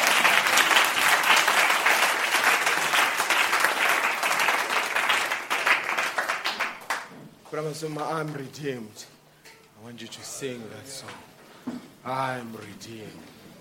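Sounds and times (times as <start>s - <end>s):
audience applause: 0.0s - 7.1s
speech: 7.5s - 9.2s, 9.8s - 13.4s.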